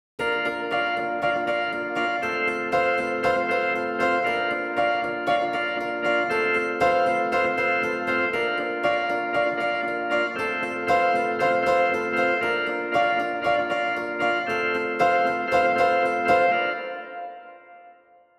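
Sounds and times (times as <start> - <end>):
keyboards playing an intro: 0.2 - 17.9.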